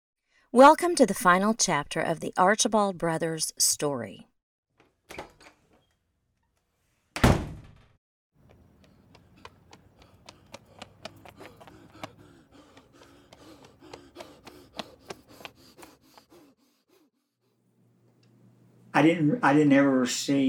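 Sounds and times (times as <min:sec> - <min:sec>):
speech: 0:00.5 - 0:04.3, 0:05.1 - 0:05.3, 0:19.0 - 0:20.4
heavy door shutting thud: 0:07.2 - 0:08.0.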